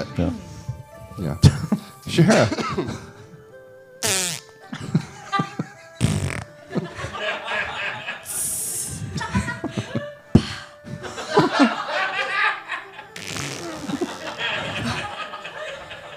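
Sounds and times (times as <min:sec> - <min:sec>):
speech: 0:00.2 - 0:00.5, 0:01.2 - 0:03.1
people laughing and chuckling: 0:02.3 - 0:03.1, 0:04.6 - 0:16.1
short blaring fart noises: 0:04.0 - 0:04.5, 0:06.0 - 0:06.6, 0:13.2 - 0:15.0.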